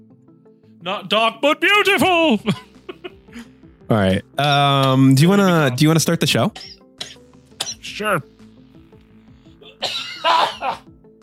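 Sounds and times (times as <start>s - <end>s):
speech: 0.8s - 2.7s, 3.4s - 6.8s, 7.8s - 8.3s
harsh coughing caused by an ear infection: 6.6s - 8.0s, 9.6s - 10.8s.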